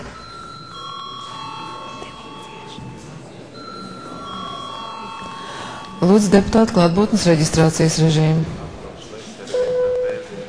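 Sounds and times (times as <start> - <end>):
electric bell ringing in a parliament chamber: 0.0 - 7.4
murmur of voices in a parliament chamber: 0.0 - 10.4
speech: 6.0 - 8.6.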